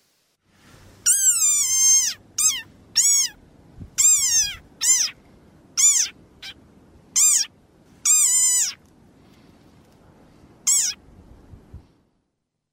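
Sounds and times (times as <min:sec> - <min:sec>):
desert rain frog squeaking: 0:01.0 - 0:03.4, 0:04.0 - 0:05.2, 0:05.8 - 0:06.6, 0:07.2 - 0:08.8, 0:10.6 - 0:11.0.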